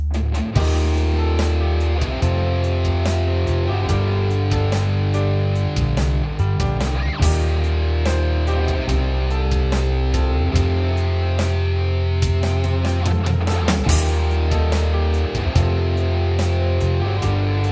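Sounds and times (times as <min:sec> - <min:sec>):
song: 0:00.1 - 0:17.7.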